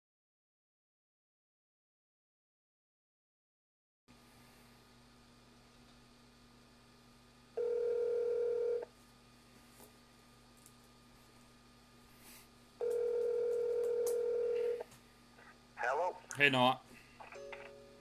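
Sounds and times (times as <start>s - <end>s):
electronic tones from an outgoing phone call: 7.6s - 8.8s, 12.8s - 14.9s, 17.3s - 17.9s
speech: 16.4s - 16.9s.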